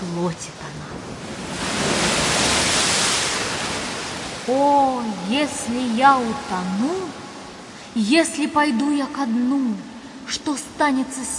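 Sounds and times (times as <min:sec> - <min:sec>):
speech: 0:00.2 - 0:01.4, 0:04.5 - 0:07.2, 0:08.0 - 0:11.3
stormy sea waves roaring: 0:00.4 - 0:08.4.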